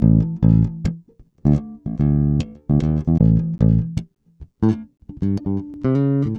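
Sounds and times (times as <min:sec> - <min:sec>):
dance pop electric bass line: 0:00.0 - 0:06.3.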